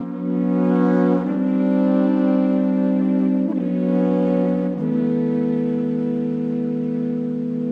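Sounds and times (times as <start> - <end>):
sampler music at 124bpm: 0.0 - 7.7.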